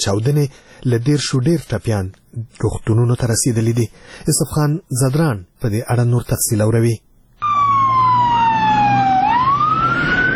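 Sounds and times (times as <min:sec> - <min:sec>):
speech: 0:00.0 - 0:07.1
fire engine and ambulance sirens wailing: 0:07.4 - 0:10.3.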